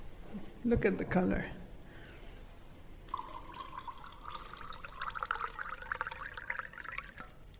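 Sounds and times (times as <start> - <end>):
speech: 0.3 - 1.6
water pouring into a glass of arak: 3.1 - 7.5.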